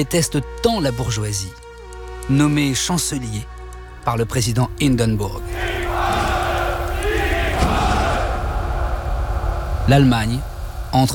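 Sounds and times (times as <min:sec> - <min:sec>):
speech: 0:00.0 - 0:01.6, 0:02.3 - 0:05.8, 0:09.9 - 0:11.1
large crowd in Germany cheering and shouting: 0:05.6 - 0:09.6.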